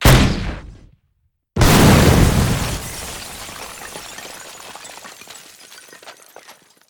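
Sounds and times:
explosion: 0.0 - 0.9, 1.6 - 3.8.

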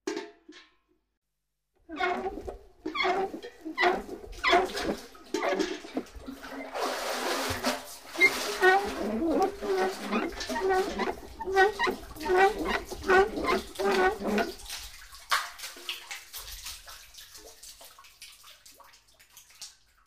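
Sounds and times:
bucket drawn from a well: 1.8 - 16.8.

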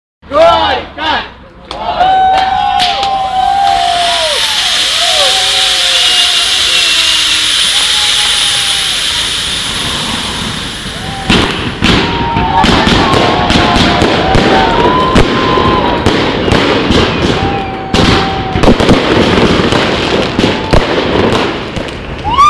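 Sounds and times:
wedding guests shouting gorko: 1.7 - 8.5, 10.8 - 18.8, 22.2 - 22.4
wedding fireworks: 2.4 - 22.4.

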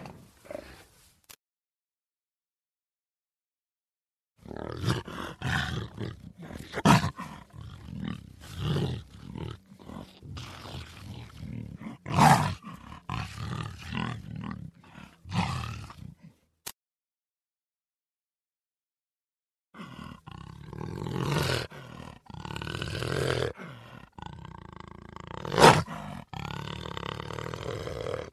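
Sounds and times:
jaguar roaring: 4.4 - 16.1, 19.7 - 28.3.

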